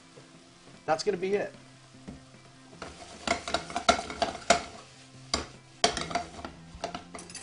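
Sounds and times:
food with chipotle garlic seasoning sizzling in a frying pan: 0.0s - 7.4s
speech: 0.9s - 1.6s
spoon scraping and clinking in a frying pan: 2.7s - 7.4s.

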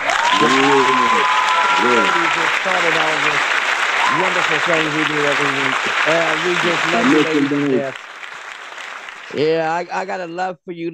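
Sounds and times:
laughter: 0.0s - 8.0s, 9.4s - 10.9s
person cheering: 0.0s - 8.0s, 9.3s - 10.6s
group clapping: 0.0s - 10.3s
speech: 0.4s - 1.1s, 1.8s - 8.1s, 9.3s - 10.9s.

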